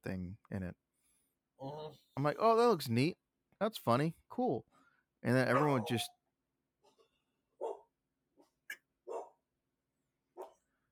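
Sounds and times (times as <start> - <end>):
speech: 0.0 - 0.8, 1.6 - 6.2
dog barking: 5.5 - 6.1, 7.6 - 7.9, 9.1 - 9.4, 10.4 - 10.6.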